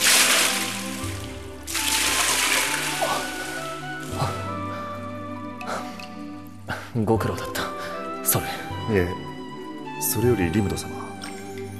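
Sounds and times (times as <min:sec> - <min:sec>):
hot water poured over a person in a bath: 0:00.0 - 0:04.9
speech: 0:07.0 - 0:07.6, 0:08.3 - 0:09.3, 0:10.0 - 0:11.0.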